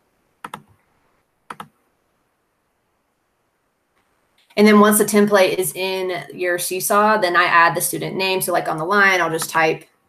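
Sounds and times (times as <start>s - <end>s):
computer mouse clicking to select an online template: 0.4s - 0.8s, 1.5s - 1.8s
speech: 4.6s - 9.9s.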